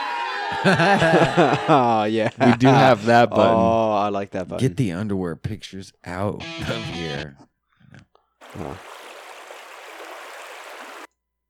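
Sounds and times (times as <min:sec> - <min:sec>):
laughter: 0:00.0 - 0:04.7, 0:06.2 - 0:07.3, 0:08.5 - 0:08.9
speech: 0:00.5 - 0:09.0
trickling stream water: 0:08.4 - 0:11.1.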